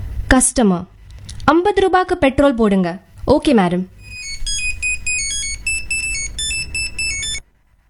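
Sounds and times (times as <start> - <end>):
speech: 0.3 - 4.0
mobile phone ringing with an electronic melodic ringtone at a gas filling station: 4.0 - 7.4.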